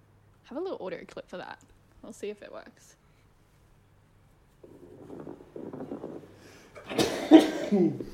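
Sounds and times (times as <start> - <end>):
speech: 0.5 - 3.0, 6.9 - 8.1
person sneezing: 6.8 - 8.1.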